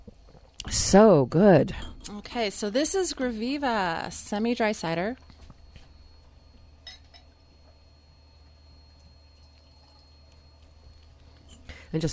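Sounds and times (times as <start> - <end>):
low steady hum: 0.0 - 12.1
speech: 0.7 - 5.3, 11.9 - 12.1
soft glass clink: 6.8 - 7.4
water pouring into a glass: 8.4 - 11.0.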